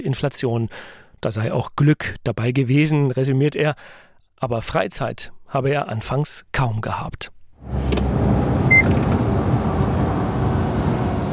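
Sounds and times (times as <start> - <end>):
speech: 0.1 - 8.2
truck driving on a motorway: 7.6 - 11.3
faint beep: 8.7 - 8.9.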